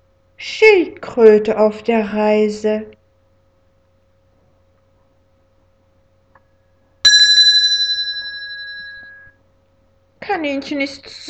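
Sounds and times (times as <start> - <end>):
speech: 0.4 - 3.0, 10.4 - 11.2
bright bell ringing with a trilling rattle: 7.1 - 9.3.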